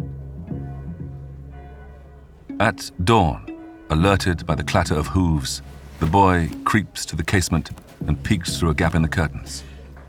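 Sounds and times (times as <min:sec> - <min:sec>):
church bell pealing late at night: 0:00.4 - 0:06.6
speech: 0:02.6 - 0:09.7.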